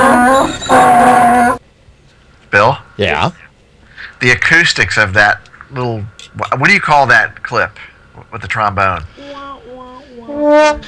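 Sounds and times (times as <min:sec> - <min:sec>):
donkey braying: 0:00.0 - 0:01.6, 0:09.2 - 0:10.8
speech: 0:02.6 - 0:03.4, 0:04.2 - 0:09.6, 0:10.4 - 0:10.8.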